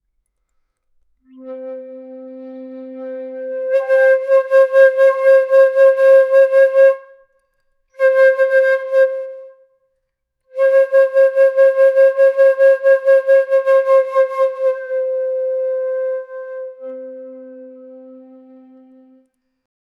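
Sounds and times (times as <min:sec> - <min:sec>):
flute: 0:01.2 - 0:07.4, 0:08.0 - 0:09.7, 0:10.5 - 0:19.6
single ancient double aulos: 0:01.3 - 0:06.0, 0:10.8 - 0:19.2.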